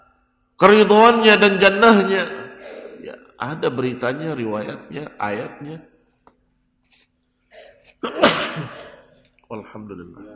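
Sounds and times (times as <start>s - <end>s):
speech: 0.6s - 5.9s, 7.6s - 8.8s, 9.5s - 10.3s
person sneezing: 7.6s - 9.1s.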